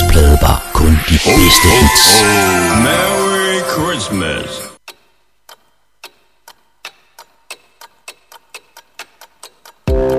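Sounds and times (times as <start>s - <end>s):
music: 0.0s - 4.8s, 7.6s - 10.1s
speech: 1.3s - 4.6s
clock ticking: 4.8s - 10.1s.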